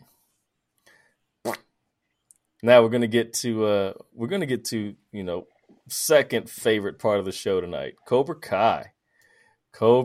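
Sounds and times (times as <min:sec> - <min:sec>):
fart: 0:01.4 - 0:01.7
speech: 0:02.6 - 0:08.9, 0:09.8 - 0:10.0.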